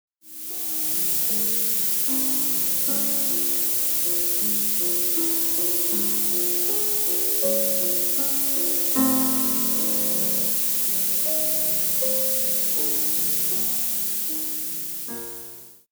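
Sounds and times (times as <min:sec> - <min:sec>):
noise shaped piano: 0:00.2 - 0:15.9.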